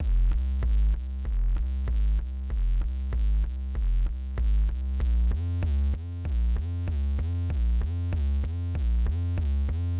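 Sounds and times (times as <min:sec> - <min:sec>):
hip hop bass: 0:00.0 - 0:09.9.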